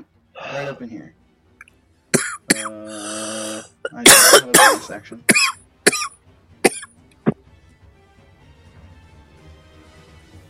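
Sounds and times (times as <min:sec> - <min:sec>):
person coughing: 0:00.4 - 0:00.8, 0:02.2 - 0:06.1, 0:06.7 - 0:06.9
speech: 0:00.6 - 0:01.2, 0:02.6 - 0:05.4.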